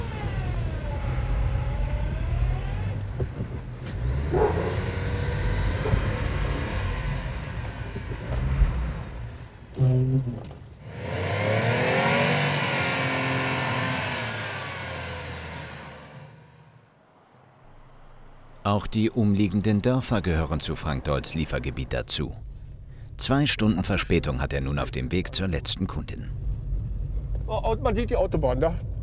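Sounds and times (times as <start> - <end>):
truck engine revving while rocking back and forth on stuck tires: 0.0 - 18.8
speech: 18.7 - 22.5, 23.2 - 26.4, 27.5 - 29.0.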